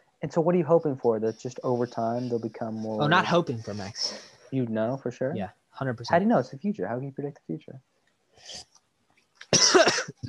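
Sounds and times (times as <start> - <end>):
speech: 0.2 - 8.7
person coughing: 9.4 - 10.2.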